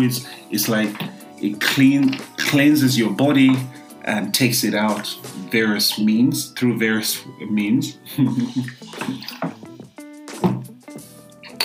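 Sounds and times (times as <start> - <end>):
speech: 0.0 - 9.5
person swallowing and sloshing water drinking from a container: 8.2 - 9.8.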